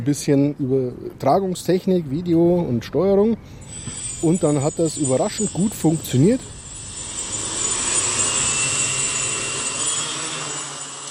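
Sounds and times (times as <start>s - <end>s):
speech: 0.0s - 6.6s
homemade wooden drone rotors whirring at liftoff: 3.6s - 11.1s.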